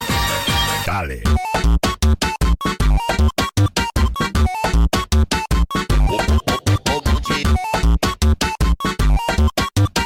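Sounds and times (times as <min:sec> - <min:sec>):
beeper funk music: 0:00.0 - 0:10.0.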